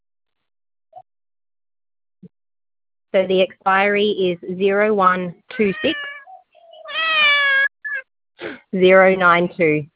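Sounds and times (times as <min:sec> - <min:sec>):
speech: 0:03.1 - 0:06.1, 0:08.7 - 0:09.9
house cat meowing: 0:05.6 - 0:08.0.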